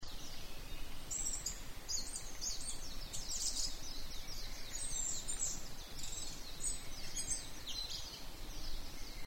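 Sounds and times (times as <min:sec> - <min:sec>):
Asian brown flycatcher singing: 0:00.0 - 0:09.2.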